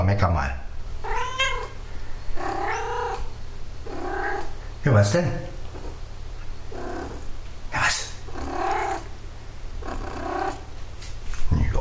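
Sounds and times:
speech: 0.2s - 0.6s, 4.8s - 5.6s
cat purring: 1.0s - 11.0s.

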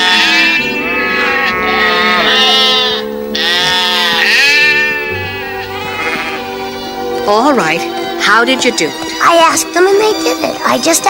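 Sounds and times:
chorus of sheep bleating: 0.0s - 7.0s
speech: 7.3s - 11.0s.

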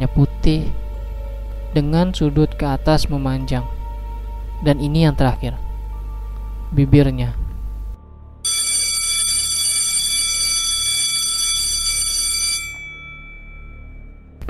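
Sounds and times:
low hum: 0.0s - 14.4s
speech: 0.2s - 0.8s, 1.7s - 3.8s, 4.6s - 5.6s, 6.7s - 7.4s
loud electric school bell ringing: 8.4s - 14.4s.

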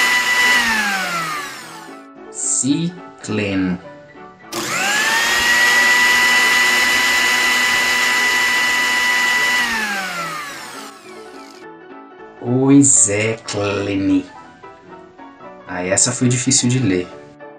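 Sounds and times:
blender whirring: 0.0s - 2.0s, 4.5s - 11.6s
speech: 2.6s - 3.9s, 12.4s - 14.4s, 15.8s - 17.2s.

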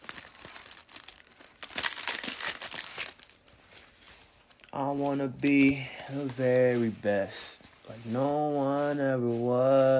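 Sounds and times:
plastic wrapper tearing: 0.0s - 6.8s
thin plastic trading card pack wrapper crinkling as it is opened: 0.0s - 9.4s
speech: 4.8s - 9.9s.

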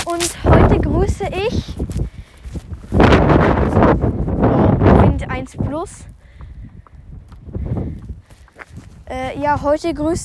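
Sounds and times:
wind buffeting a microphone: 0.0s - 10.2s
speech: 0.1s - 2.1s, 5.4s - 6.2s, 9.1s - 10.2s.

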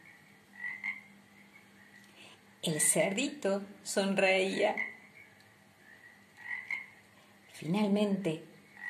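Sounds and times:
chorus of toads croaking in a lagoon: 0.0s - 2.1s, 4.5s - 7.1s, 8.6s - 8.8s
speech: 2.6s - 4.9s, 7.6s - 8.5s.

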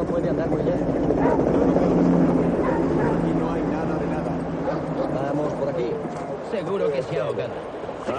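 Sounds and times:
people's voices: 0.0s - 8.1s
police dogs barking and yipping while searching a riverbank at night: 1.0s - 5.2s.

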